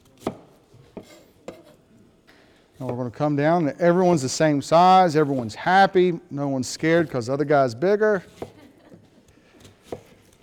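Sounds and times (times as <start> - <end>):
knife slicing food: 0.0 - 1.8, 8.3 - 8.7, 9.5 - 10.4
speech: 2.8 - 8.5.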